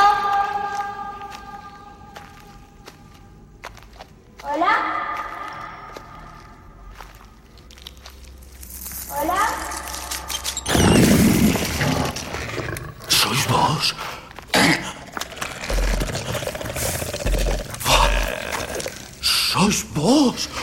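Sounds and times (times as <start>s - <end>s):
footsteps inside a labyrinth: 0.0s - 9.1s, 11.4s - 19.2s
person calling out inside a labyrinth: 17.8s - 20.6s.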